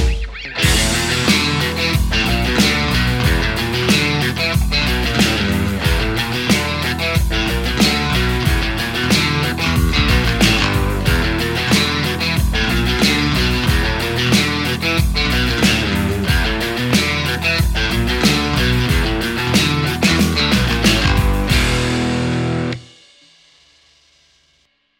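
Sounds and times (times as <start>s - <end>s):
electric guitar through a hot amplifier: 0.1s - 22.9s.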